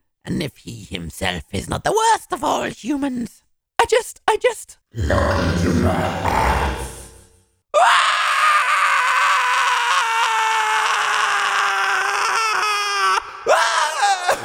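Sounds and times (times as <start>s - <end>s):
speech: 0.2s - 6.8s
person screaming loudly: 5.0s - 14.4s.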